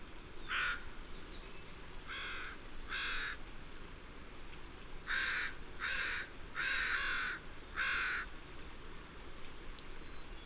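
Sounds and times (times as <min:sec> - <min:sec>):
wind: 0:00.0 - 0:10.4
crows cawing: 0:02.1 - 0:03.4, 0:05.1 - 0:08.3.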